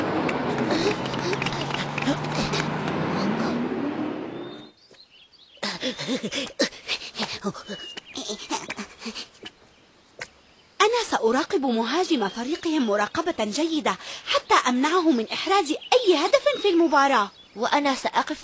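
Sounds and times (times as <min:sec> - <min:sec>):
arriving car engine rumbling: 0:00.0 - 0:04.8
speech: 0:06.1 - 0:06.6, 0:07.4 - 0:08.7, 0:11.2 - 0:18.4.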